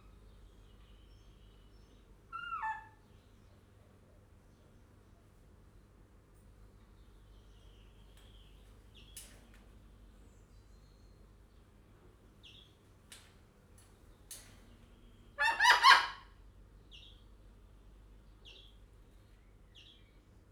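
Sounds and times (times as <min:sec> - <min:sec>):
white cockatoo calling in a zoo: 0:02.3 - 0:03.1, 0:15.3 - 0:16.4.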